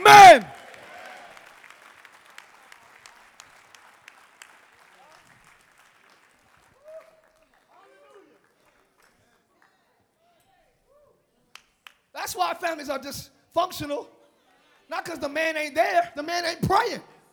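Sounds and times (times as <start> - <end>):
scattered audience voices calling out: 0.0 - 0.5
audience clapping hands in applause: 0.0 - 7.0
speech: 12.3 - 14.2, 14.9 - 17.1.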